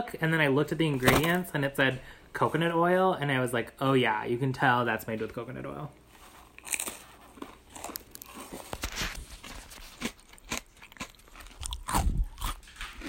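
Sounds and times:
speech: 0.0 - 6.0, 6.6 - 6.8
crackers being chewed: 6.5 - 13.0.

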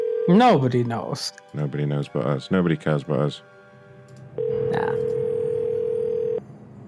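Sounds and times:
speech: 0.3 - 3.6, 4.4 - 5.2
telephone dial tone while calling someone: 4.4 - 6.4.

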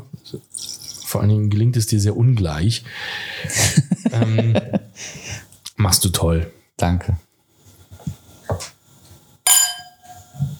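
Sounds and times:
speech: 0.3 - 7.2
laughter: 3.4 - 5.1
quieter knocks and glass handling sounds: 9.5 - 10.4
two wine glasses clinking in a toast: 9.5 - 10.4.

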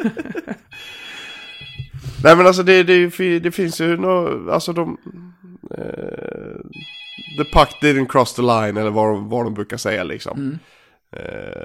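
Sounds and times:
speech: 0.0 - 0.4, 2.2 - 11.6
laughter: 0.0 - 0.7
old landline telephone bell ringing: 0.7 - 2.2, 6.7 - 8.1.

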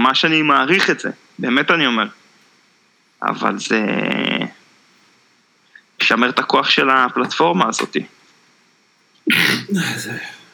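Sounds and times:
speech: 0.0 - 2.2, 3.2 - 4.2, 6.0 - 8.2, 9.3 - 10.4
person sneezing: 9.3 - 10.5.

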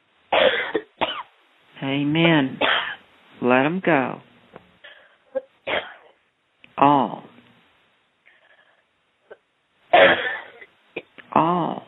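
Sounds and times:
harsh broadband coughs: 0.3 - 1.3, 2.6 - 3.0, 5.4 - 6.2, 9.3 - 11.2
speech: 1.8 - 2.8, 3.4 - 4.3, 6.8 - 7.2.

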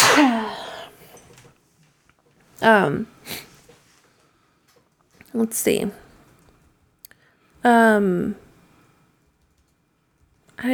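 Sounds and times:
person sneezing: 0.0 - 1.0
speech: 2.6 - 3.2, 5.4 - 6.0, 7.6 - 8.4, 10.6 - 10.7.

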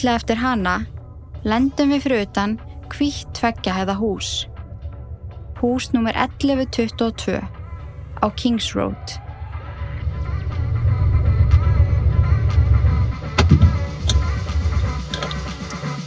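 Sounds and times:
speech: 0.0 - 4.5, 5.6 - 7.6, 8.2 - 9.2
car engine humming during a drive: 0.0 - 15.8
clicks and knocks: 13.4 - 15.8.

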